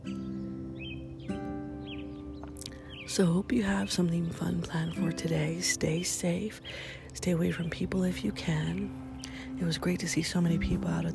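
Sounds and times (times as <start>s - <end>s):
birds chirping and whistling at sunrise: 0.0s - 11.1s
steady low humming drone: 2.8s - 11.1s
speech: 3.1s - 9.0s, 9.6s - 11.1s.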